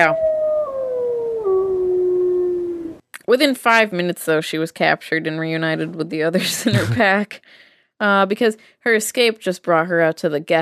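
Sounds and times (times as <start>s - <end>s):
speech: 0.0s - 0.2s, 3.3s - 10.6s
wolf howling: 0.0s - 3.0s
laughter: 6.4s - 7.0s.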